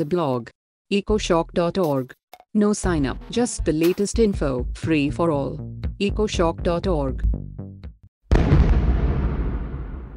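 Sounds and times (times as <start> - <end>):
speech: 0.0 - 7.8
stun grenade going off: 8.3 - 10.1.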